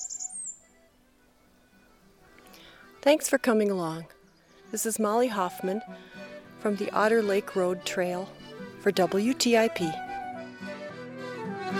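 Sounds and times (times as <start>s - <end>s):
rose-breasted grosbeak song: 0.0s - 0.8s, 4.2s - 6.4s
speech: 3.0s - 10.0s.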